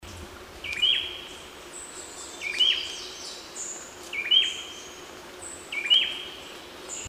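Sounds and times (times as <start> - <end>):
background hiss: 0.0 - 7.0
grey-breasted wood wren short whistled song: 0.6 - 4.9, 5.7 - 6.3.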